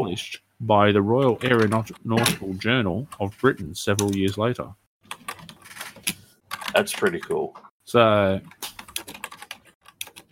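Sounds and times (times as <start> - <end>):
speech: 0.2 - 4.8, 6.7 - 8.7
rapid computer keyboard typing: 5.0 - 7.4, 8.4 - 10.3.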